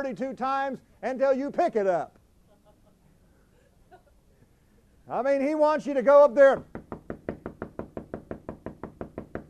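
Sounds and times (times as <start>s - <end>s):
speech: 0.0s - 2.2s, 5.1s - 6.8s
laughter: 2.4s - 5.0s
knocking on a hard surface: 6.6s - 9.4s.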